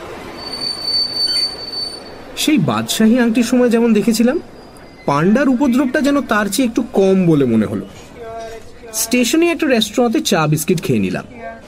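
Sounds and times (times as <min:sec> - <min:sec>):
express train wheels squealing arriving at a railway station in Haridwar at dawn: 0:00.3 - 0:02.3, 0:04.4 - 0:05.3
speech: 0:02.4 - 0:08.0, 0:09.0 - 0:11.6.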